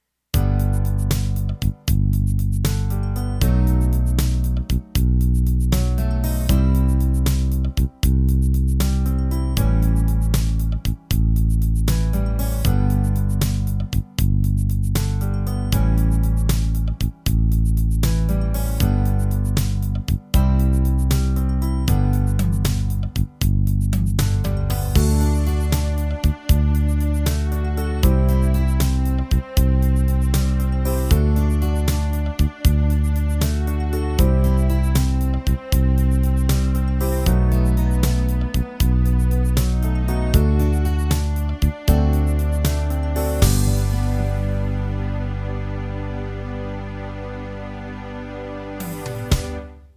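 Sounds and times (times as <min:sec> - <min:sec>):
12-8 ballad music: 0:00.4 - 0:49.9.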